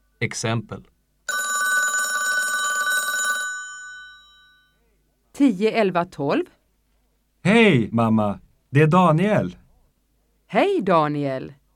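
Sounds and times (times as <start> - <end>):
speech: 0.2 - 0.9, 5.4 - 6.6, 7.4 - 9.6, 10.5 - 11.6
telephone bell ringing: 1.3 - 4.8.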